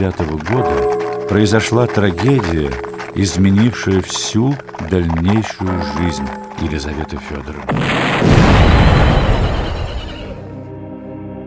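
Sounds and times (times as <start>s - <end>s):
speech: 0.0s - 8.6s
bomb explosion: 7.7s - 9.7s.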